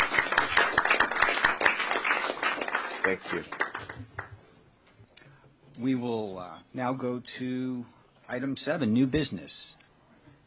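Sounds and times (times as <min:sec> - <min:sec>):
committee applauding at a meeting: 0:00.0 - 0:04.4
speech: 0:03.1 - 0:03.6, 0:05.8 - 0:09.8.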